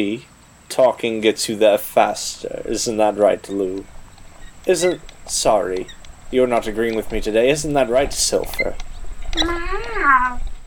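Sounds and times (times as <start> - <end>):
speech: 0.0 - 4.0, 4.6 - 10.5
cat meowing: 9.4 - 10.5.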